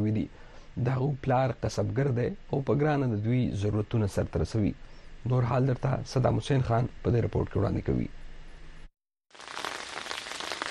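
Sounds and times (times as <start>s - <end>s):
speech: 0.0s - 8.2s
steady rain falling on a mud-brick house in the Battagram district of Khyber Pakhtunkhwa: 9.3s - 10.6s.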